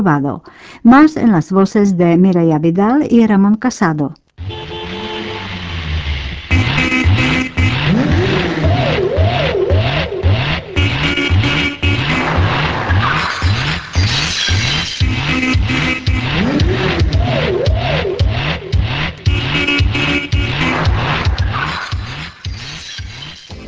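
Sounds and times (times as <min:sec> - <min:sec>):
speech: 0:00.0 - 0:04.2
car engine revving approaching a border checkpoint: 0:04.4 - 0:22.4.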